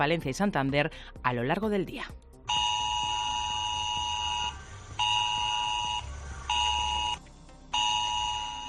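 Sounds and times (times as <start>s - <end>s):
speech: 0.0s - 2.3s
mobile phone emergency alert in shrill electronic bursts: 2.5s - 7.2s, 7.8s - 8.6s.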